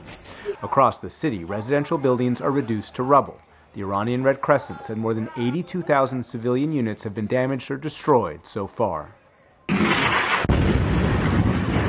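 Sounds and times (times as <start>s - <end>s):
speech: 0.4s - 9.2s
explosions from strikes on a city: 9.7s - 11.8s.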